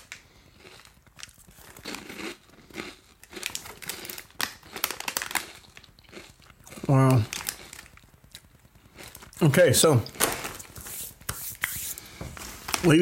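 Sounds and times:
crunchy chewing of a dry snack: 0.0s - 10.2s
speech: 6.9s - 7.4s, 9.4s - 10.2s.

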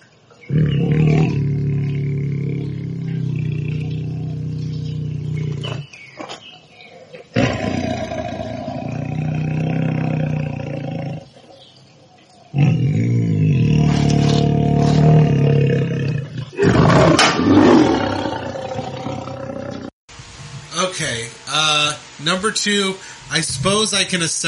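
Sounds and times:
tiger roaring and growling: 0.4s - 11.9s, 12.5s - 19.9s
speech: 22.4s - 24.4s.

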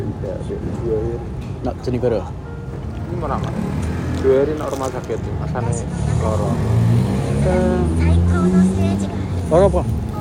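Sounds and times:
speech: 0.2s - 2.4s, 3.1s - 10.0s
car engine humming as it passes by: 3.1s - 10.1s.

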